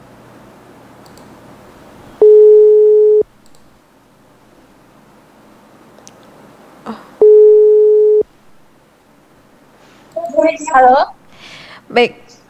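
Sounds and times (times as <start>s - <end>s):
small click: 1.0s - 1.3s, 3.4s - 3.7s
telephone busy signal as a call fails to connect: 2.2s - 3.2s, 7.2s - 8.2s
speech: 10.8s - 11.2s, 11.9s - 12.2s.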